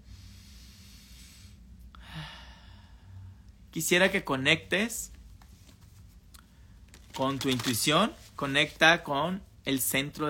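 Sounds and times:
slow deep breath in and out: 0.0s - 3.6s
steady low hum: 0.0s - 10.2s
speech: 3.8s - 5.2s, 7.2s - 10.2s.

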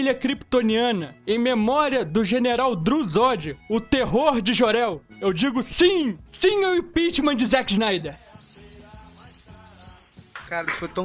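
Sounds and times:
speech: 0.0s - 9.5s, 10.5s - 11.0s
cricket chirping: 8.3s - 10.3s.

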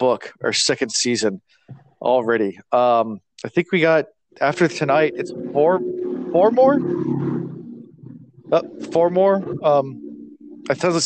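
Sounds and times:
speech: 0.0s - 7.3s, 8.5s - 10.0s, 10.7s - 11.0s
stomach gurgling: 5.1s - 11.0s.

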